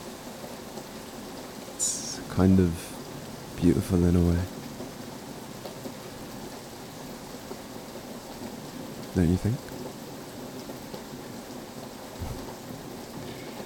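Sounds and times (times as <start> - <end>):
heavy rain during a storm: 0.0 - 13.6
speech: 1.8 - 2.9, 3.6 - 4.6, 9.2 - 9.7
deep low rumble of thunder: 12.2 - 13.6.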